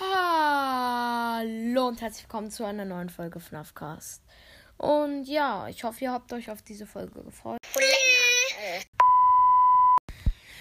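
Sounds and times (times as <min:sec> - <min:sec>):
high child-like voice speaking in a film: 0:00.0 - 0:02.1, 0:04.8 - 0:08.8
speech: 0:01.8 - 0:09.0
loud steady electronic beep in a film soundtrack: 0:09.0 - 0:10.0.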